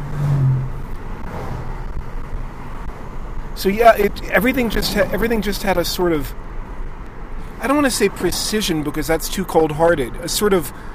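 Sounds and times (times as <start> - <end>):
car engine accelerating inside a moving car: 0.0 - 7.3
road noise: 0.0 - 10.9
speech: 3.6 - 6.4, 7.6 - 10.9.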